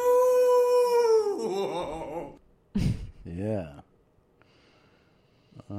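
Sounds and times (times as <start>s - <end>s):
person imitating a dog howling: 0.0s - 2.4s
speech: 2.8s - 3.9s.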